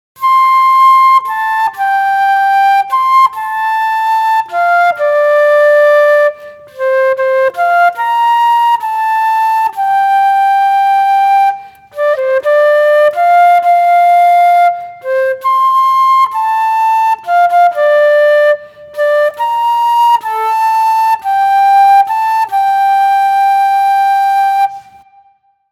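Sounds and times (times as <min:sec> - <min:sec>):
transverse flute: 0:00.0 - 0:25.7.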